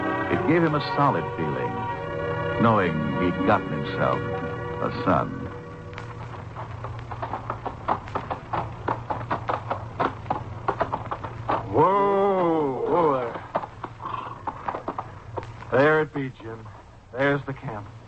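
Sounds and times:
low hum: 0:00.0 - 0:18.0
speech: 0:00.5 - 0:01.8, 0:02.6 - 0:05.4
horse hooves clip-clopping: 0:03.3 - 0:17.0.

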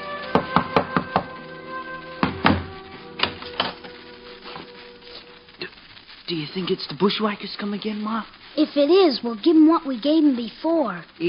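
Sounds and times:
knocking on a wooden door in the evening: 0:00.4 - 0:01.3, 0:02.2 - 0:02.7
speech: 0:06.3 - 0:11.2.

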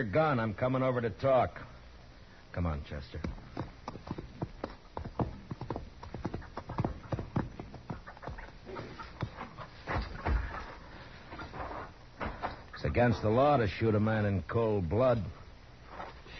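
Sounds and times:
speech: 0:00.0 - 0:01.7, 0:02.5 - 0:03.4, 0:13.0 - 0:15.4
horse hooves clip-clopping: 0:03.1 - 0:11.6.

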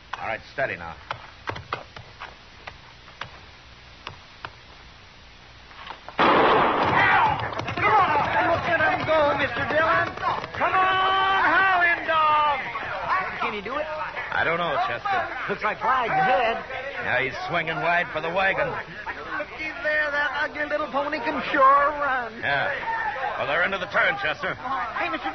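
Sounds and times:
speech: 0:00.3 - 0:01.2, 0:14.4 - 0:19.1, 0:20.4 - 0:25.3
single gunshot fired to start a horse race: 0:06.2 - 0:07.5
crowd shouting: 0:06.6 - 0:25.3.

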